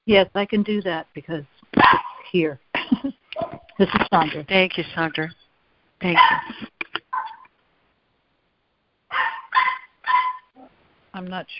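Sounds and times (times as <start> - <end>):
speech: 0.1 - 5.4, 6.0 - 6.8, 11.2 - 11.5
dog yelping: 1.8 - 2.3, 6.1 - 7.5, 9.1 - 10.6.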